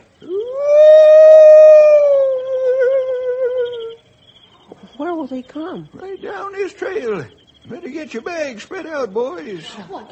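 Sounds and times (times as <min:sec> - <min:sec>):
person imitating an owl call as a signal: 0:00.2 - 0:04.0
speech: 0:05.3 - 0:10.1
laughter: 0:09.6 - 0:10.1.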